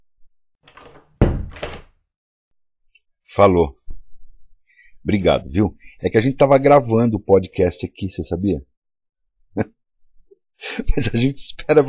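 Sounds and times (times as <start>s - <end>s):
door creaking shut: 0.7s - 2.0s
speech: 3.4s - 3.8s, 5.0s - 8.7s, 9.5s - 9.8s, 10.6s - 11.8s.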